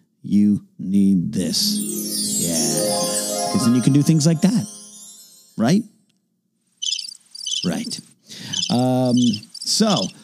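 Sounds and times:
speech: 0.3s - 4.8s, 5.6s - 5.9s, 7.6s - 8.1s, 8.7s - 10.2s
low tonal sounds: 1.5s - 5.6s
crickets chirping: 6.8s - 10.2s.

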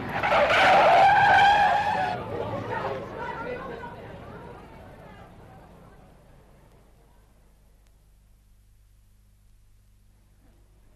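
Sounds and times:
car tires screeching under hard braking: 0.0s - 2.3s.

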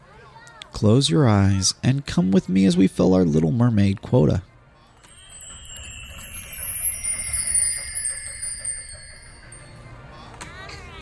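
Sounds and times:
speech: 0.8s - 4.5s
vintage fire truck bell ringing at a theme park: 5.0s - 9.9s.

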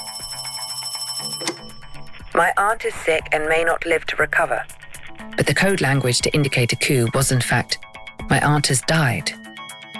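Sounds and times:
telephone bell ringing in a rapid rattling trill: 0.0s - 2.6s
speech: 2.4s - 9.4s.

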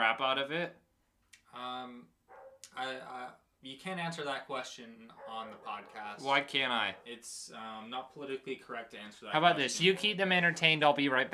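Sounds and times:
speech: 0.0s - 0.9s, 1.5s - 11.3s
dogs barking: 2.3s - 2.6s, 5.1s - 6.2s.

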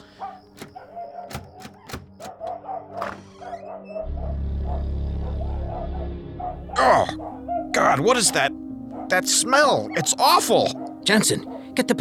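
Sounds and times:
house door handle rattling as it is tried: 0.4s - 3.8s
low rumbling hum: 4.0s - 7.6s
speech: 6.8s - 8.5s, 9.1s - 11.9s.

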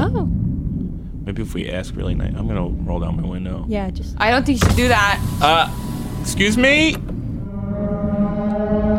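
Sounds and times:
speech: 1.4s - 7.1s
low sustained buzzy whale call: 7.3s - 8.9s.

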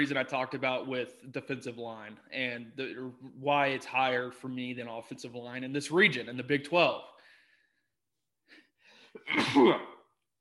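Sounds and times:
speech: 0.0s - 7.1s, 9.2s - 9.9s
sneeze: 9.2s - 10.0s.

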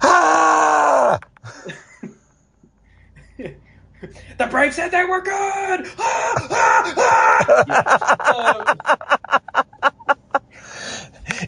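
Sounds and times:
man screaming into a microphone: 0.0s - 1.2s, 5.3s - 7.6s
speech: 4.4s - 9.4s
laughter: 6.2s - 10.6s.

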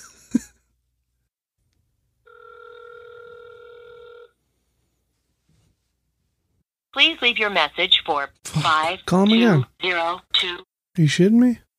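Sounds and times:
electronic telephone ringback tone on an outgoing call: 2.3s - 4.4s
speech: 7.0s - 11.6s.

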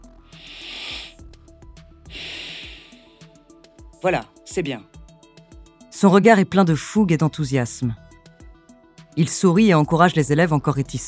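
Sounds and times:
people breathing in and out together during a guided relaxation exercise: 0.2s - 1.2s, 2.0s - 3.5s
speech: 4.0s - 5.0s, 6.0s - 8.0s, 9.2s - 11.0s.

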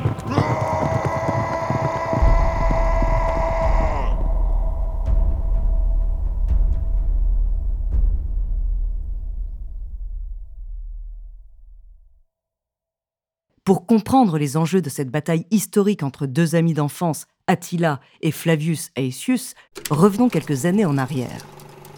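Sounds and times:
war cry echoing across a plain: 0.0s - 5.5s
low rumble: 2.2s - 12.2s
speech: 13.7s - 21.7s.

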